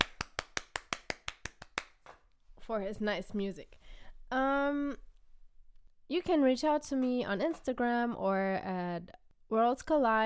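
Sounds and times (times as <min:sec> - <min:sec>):
single person clapping: 0:00.0 - 0:02.3
speech: 0:02.7 - 0:05.1, 0:06.1 - 0:10.2.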